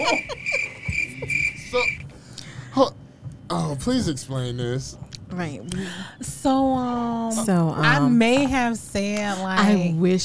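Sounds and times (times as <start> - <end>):
laughter: 0.0 - 1.9
crickets chirping: 0.0 - 2.1
speech: 2.8 - 3.0, 3.8 - 10.2.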